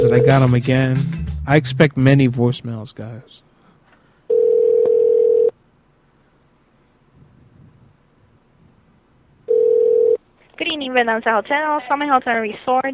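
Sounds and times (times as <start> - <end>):
telephone line tone during a call to a restaurant: 0.0 - 0.5, 4.3 - 5.6, 9.5 - 10.2
speech: 0.0 - 3.5, 10.6 - 12.9.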